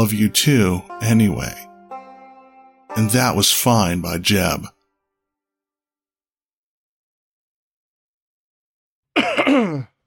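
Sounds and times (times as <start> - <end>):
speech: 0.0 - 1.7, 2.9 - 4.8, 9.6 - 9.9
man coughing: 9.2 - 10.0.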